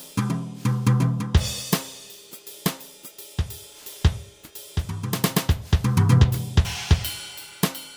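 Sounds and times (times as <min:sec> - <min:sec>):
jazz music: 0:00.2 - 0:01.6, 0:04.8 - 0:07.8.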